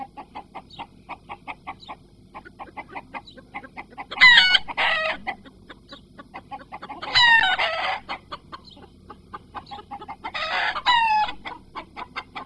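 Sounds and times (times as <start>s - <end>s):
chickens clucking: 0.0s - 12.4s
low background hum: 0.0s - 12.4s
rooster crowing: 3.6s - 5.4s, 6.8s - 8.2s, 10.2s - 11.5s.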